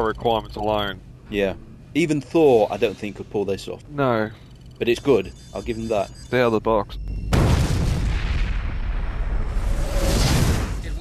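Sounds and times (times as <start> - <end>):
speech: 0.0 - 7.1
loud sustained explosion roaring and rumbling: 7.3 - 10.9.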